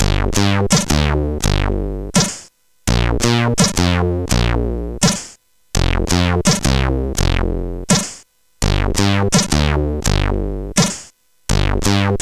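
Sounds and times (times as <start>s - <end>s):
synth bass from a CSG8580R5 SID chip: 0.0s - 2.2s, 2.9s - 5.2s, 5.8s - 7.9s, 8.6s - 10.8s, 11.5s - 12.2s.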